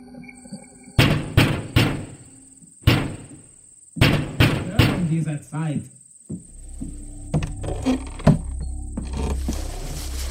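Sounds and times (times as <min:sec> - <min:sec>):
loud heavy knocking on a wooden door: 0:01.0 - 0:02.2, 0:02.9 - 0:03.4, 0:04.0 - 0:05.1
speech: 0:05.1 - 0:06.9, 0:07.8 - 0:08.1.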